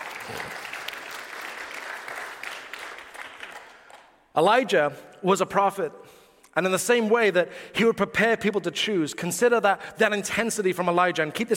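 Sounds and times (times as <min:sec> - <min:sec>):
crowd applauding: 0:00.0 - 0:04.2
speech: 0:00.3 - 0:00.7, 0:04.4 - 0:11.5.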